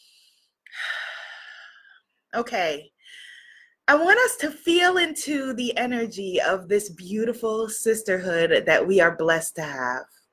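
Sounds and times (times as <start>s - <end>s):
deep breath: 0.0s - 2.1s, 3.0s - 3.8s
speech: 2.3s - 3.3s, 3.9s - 10.2s.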